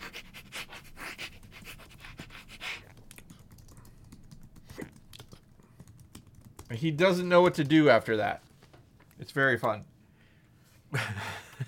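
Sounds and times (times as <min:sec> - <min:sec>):
person sniffing a dog: 0:00.0 - 0:03.0
speech: 0:06.7 - 0:08.5, 0:09.3 - 0:09.9.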